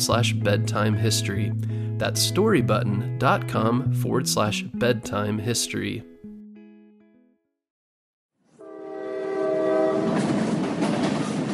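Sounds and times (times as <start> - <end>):
speech: 0.0 - 6.1
powerful train locomotive horn: 8.5 - 10.6
clatter of rolling train cars: 9.3 - 11.5
train locomotive rumble: 9.3 - 11.5.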